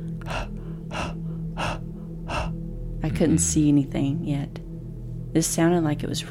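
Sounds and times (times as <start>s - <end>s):
creature panting with harsh rasping breaths: 0.0s - 2.7s
low constant hum: 0.0s - 6.2s
speech: 3.1s - 4.6s, 5.3s - 6.2s.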